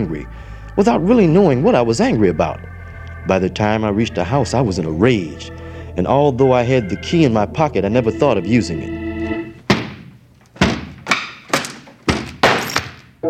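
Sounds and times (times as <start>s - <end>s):
speech: 0.0s - 9.0s
door being broken down and crashing: 9.7s - 13.1s
heavy booming thuds of a door being battered: 10.6s - 11.1s.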